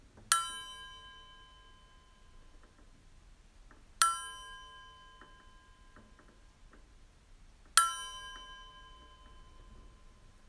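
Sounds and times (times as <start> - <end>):
bell struck with a long shimmering decay: 0.3 - 2.4, 4.0 - 6.0, 7.8 - 10.2.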